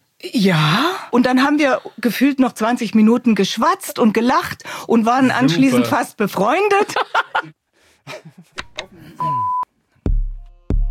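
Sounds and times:
speech: 0.2 - 9.6
short steady electronic alarm beep: 9.2 - 9.7.

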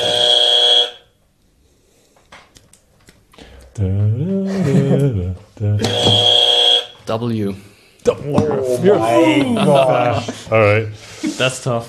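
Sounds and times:
loud harsh game-show buzzer: 0.0 - 1.0, 5.8 - 7.0
speech: 3.8 - 4.4, 7.1 - 11.8
laughter: 4.2 - 6.2, 8.3 - 11.6.

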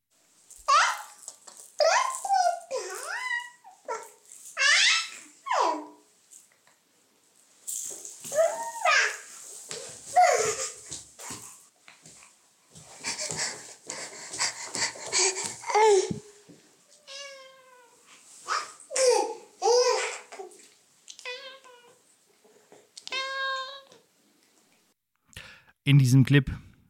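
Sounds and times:
young child squealing and babbling while chasing a cat: 0.7 - 1.2, 1.8 - 6.0, 8.3 - 9.3, 10.1 - 10.9, 15.1 - 16.2, 17.1 - 20.6, 23.1 - 23.9
cat meowing loudly: 17.0 - 18.0, 23.0 - 23.9
speech: 25.9 - 26.6.

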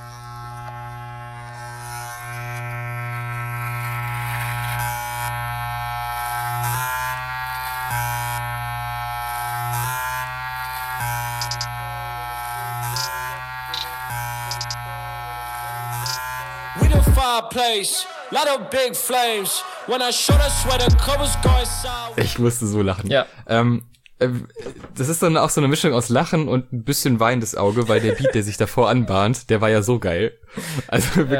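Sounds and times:
electric razor buzzing: 0.0 - 17.3, 20.0 - 22.2
speech: 17.5 - 31.3
laughter: 27.6 - 29.4, 30.6 - 31.3.

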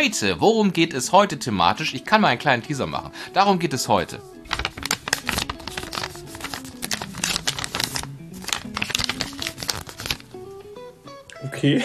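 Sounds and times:
speech: 0.0 - 4.7, 11.6 - 11.8
sheet of paper being folded: 4.4 - 10.3.

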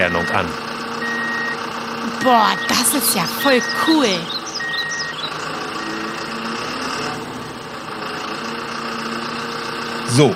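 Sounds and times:
speech: 0.0 - 0.7, 2.2 - 4.3, 10.1 - 10.3
tow truck reversing beeps: 0.0 - 1.6, 2.2 - 6.2
tow truck engine running while the vehicle works: 0.0 - 10.3.

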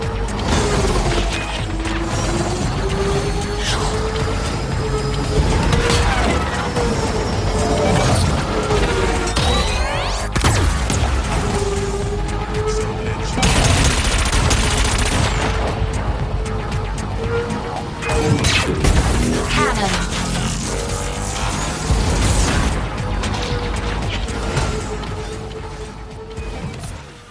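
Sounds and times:
futuristic racing video game whining engine tone: 0.0 - 27.2.

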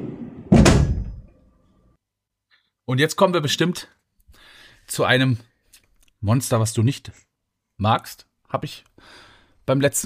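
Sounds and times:
drawer pushed shut: 0.4 - 1.3
speech: 2.9 - 4.0, 4.9 - 5.5, 6.2 - 10.0.

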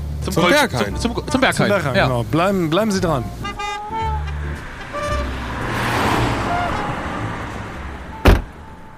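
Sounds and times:
taxi road rumble along a river: 0.0 - 8.9
speech: 0.2 - 3.5
sharp thump: 8.2 - 8.6.

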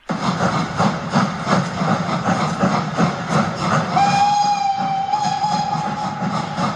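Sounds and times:
steam locomotive chugging with rhythmic chuffing: 0.0 - 6.7
sustained steam whistle: 3.9 - 6.7.

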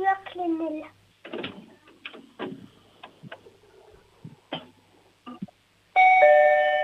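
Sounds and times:
brief voices: 0.0 - 5.5
loud electronic doorbell chime: 6.0 - 6.8.

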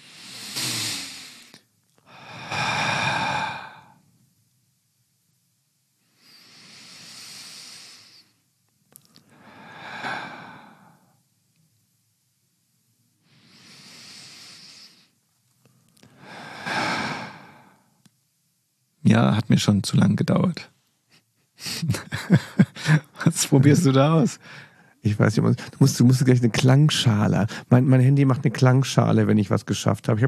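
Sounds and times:
deep breaths in through the nose: 0.0 - 4.0, 6.0 - 8.4, 9.2 - 11.1, 13.2 - 15.2, 16.0 - 17.9, 24.4 - 25.0
speech: 19.2 - 20.7, 23.4 - 30.2
laughter: 21.6 - 24.4.

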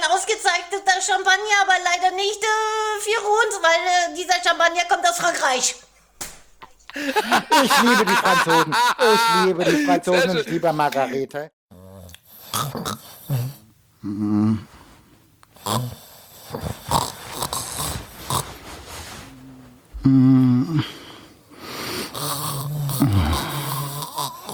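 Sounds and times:
speech: 0.2 - 5.9, 7.0 - 11.6, 15.7 - 16.8, 20.0 - 21.0
laughter: 6.9 - 11.3
loud rattling snores: 11.7 - 13.7, 15.5 - 19.2, 21.9 - 24.5
snorting breaths: 11.7 - 24.5.

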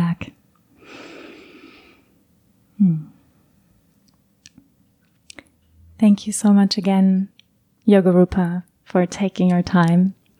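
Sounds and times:
deep breath in and out at the close of a guided yoga relaxation: 0.8 - 2.2
speech: 6.0 - 10.2.

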